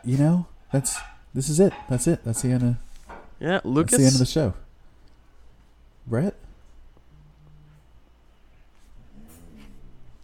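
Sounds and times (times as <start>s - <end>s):
speech: 0.0s - 4.6s, 6.1s - 6.4s
steady hum: 0.0s - 10.2s
dog moaning: 9.0s - 10.2s.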